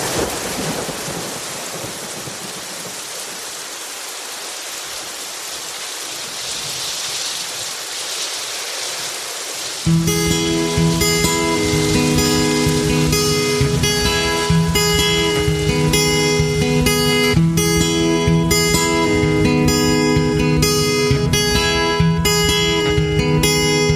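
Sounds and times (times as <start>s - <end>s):
heavy rain pouring: 0.0s - 23.9s
music: 9.9s - 23.9s.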